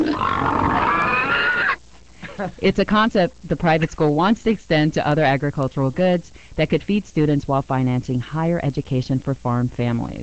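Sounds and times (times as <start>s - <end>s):
hog raised at a school farm grunting: 0.0s - 1.8s
speech: 2.4s - 10.2s.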